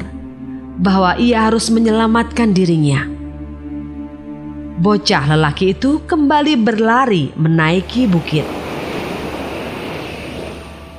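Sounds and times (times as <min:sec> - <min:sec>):
speech: 0:00.8 - 0:03.2, 0:04.8 - 0:08.6
flood water surging across the land of Enggano island: 0:07.8 - 0:10.9.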